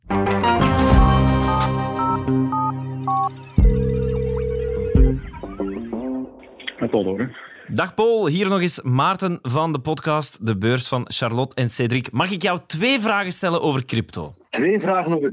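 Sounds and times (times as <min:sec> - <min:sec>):
telephone ringing: 0:01.0 - 0:05.2
busy synthetic electronic soundscape: 0:01.3 - 0:06.9
speech: 0:07.0 - 0:15.3.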